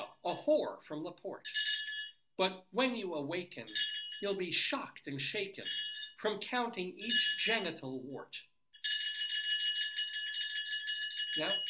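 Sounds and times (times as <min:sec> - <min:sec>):
speech: 0:00.3 - 0:01.6, 0:02.4 - 0:08.5, 0:11.4 - 0:11.6
high-pitched bell ringing: 0:01.4 - 0:02.2, 0:03.7 - 0:04.6, 0:05.6 - 0:06.4, 0:07.0 - 0:11.6.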